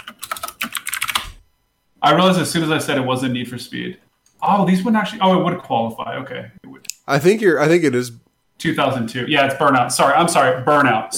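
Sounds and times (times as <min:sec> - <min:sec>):
rapid typing on a computer keyboard: 0:00.0 - 0:01.4
speech: 0:02.0 - 0:11.1.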